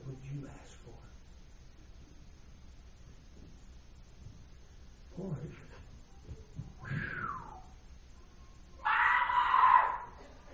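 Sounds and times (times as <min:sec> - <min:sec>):
person imitating a woman screaming: 0:08.8 - 0:10.2.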